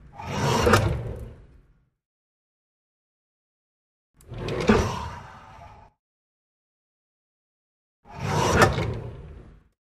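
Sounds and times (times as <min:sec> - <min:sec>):
wooden drawer opening and closing: 0:00.2 - 0:01.4, 0:04.2 - 0:05.0, 0:08.2 - 0:09.4.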